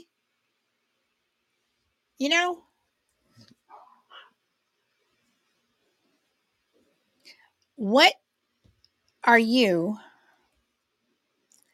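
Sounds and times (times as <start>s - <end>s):
speech: 2.2s - 2.7s, 7.8s - 8.2s, 9.2s - 10.1s
dog barking excitedly: 3.7s - 4.3s.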